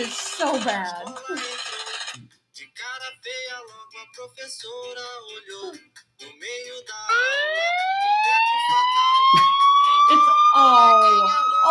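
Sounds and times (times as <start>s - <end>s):
speech: 0.0s - 1.5s, 4.2s - 9.4s, 10.1s - 11.6s
Hispanic song with voices: 0.0s - 1.7s, 2.5s - 11.6s
siren effect wailing inside a Hispanic song: 7.1s - 11.6s.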